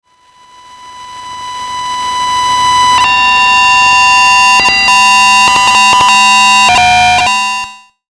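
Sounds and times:
high hum: 0.7 - 7.4
electronic static: 1.1 - 7.6
digital stutter: 2.0 - 7.3.

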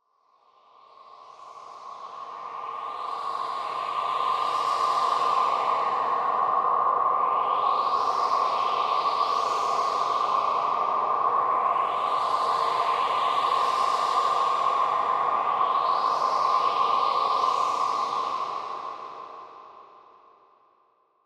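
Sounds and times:
sci-fi high synthesized wind gusts texture: 2.0 - 19.8.

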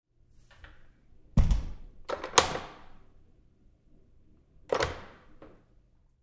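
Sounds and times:
bathroom stall door lock: 1.4 - 2.9, 4.7 - 5.5.

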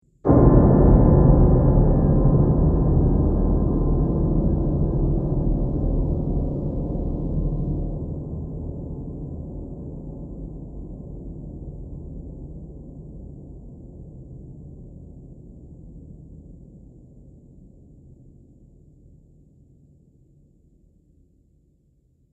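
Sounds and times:
dark horror piano music: 0.2 - 11.2.

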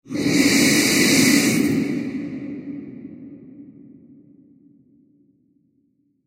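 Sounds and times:
very breathy scary horror transition: 0.0 - 4.8.

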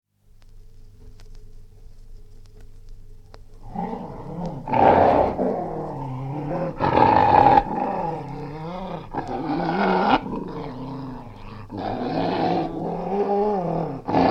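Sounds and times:
angry English springer spaniel snarling: 3.6 - 14.2.

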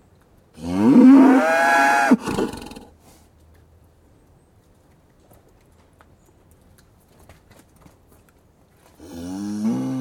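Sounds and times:
cattle mooing in a yard: 0.6 - 2.2, 9.0 - 9.9.

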